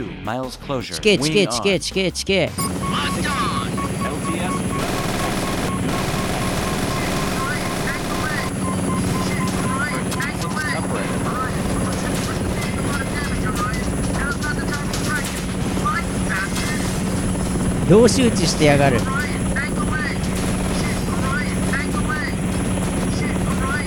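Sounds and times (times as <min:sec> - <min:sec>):
speech: 0:00.2 - 0:03.3, 0:17.9 - 0:19.3
voice-like fragments: 0:00.7 - 0:17.2, 0:17.8 - 0:23.8
helicopter rotor and engine noise in a video game: 0:02.6 - 0:23.8.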